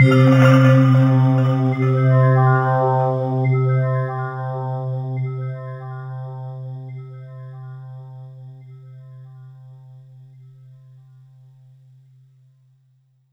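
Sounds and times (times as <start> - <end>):
Yamaha SY22 synthesizer Crystals tone on C3: 0.0 - 4.1.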